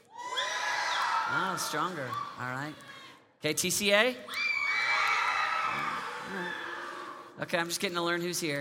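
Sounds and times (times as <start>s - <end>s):
large crowd of students yelling and cheering: 0.0s - 3.3s, 4.2s - 7.4s
speech: 1.3s - 4.5s, 5.8s - 6.6s, 7.4s - 8.6s.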